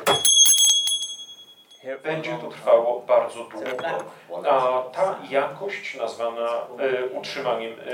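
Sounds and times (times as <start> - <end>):
small metal bell ringing with bright high overtones: 0.0 - 1.9
speech: 1.9 - 7.9.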